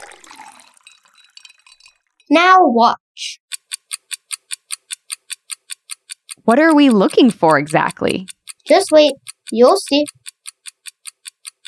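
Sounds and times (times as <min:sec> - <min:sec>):
ice clinking in a glass: 0:00.0 - 0:02.2
water pouring into a glass: 0:00.0 - 0:02.2
speech: 0:02.3 - 0:03.4, 0:06.4 - 0:10.2.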